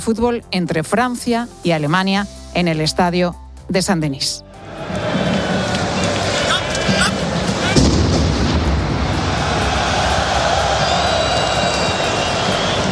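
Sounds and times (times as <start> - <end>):
speech: 0.0 - 5.1
roar of a large stadium crowd at a football match: 4.6 - 12.9
dull booming explosion from an attack at a stadium: 7.8 - 9.1.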